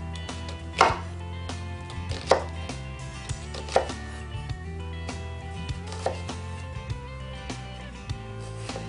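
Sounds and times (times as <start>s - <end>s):
knife slicing through an onion on a cutting board: 0.1s - 1.2s, 1.9s - 4.3s, 5.1s - 6.7s, 7.3s - 8.8s.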